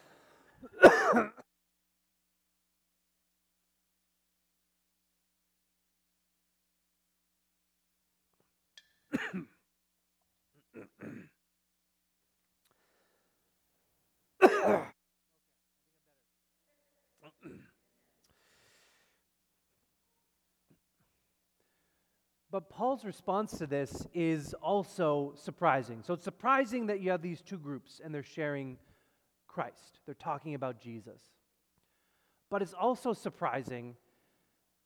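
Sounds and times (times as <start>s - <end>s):
person coughing after drinking water: 0.6s - 1.5s, 9.1s - 9.6s, 10.6s - 11.4s, 14.4s - 15.0s, 17.2s - 17.8s
throat clearing: 0.6s - 1.5s, 9.1s - 9.6s, 10.6s - 11.4s, 14.4s - 15.0s, 17.2s - 17.8s
speech: 0.7s - 1.4s, 9.1s - 9.5s, 14.4s - 14.9s, 22.5s - 28.9s, 29.6s - 31.4s, 32.5s - 34.0s.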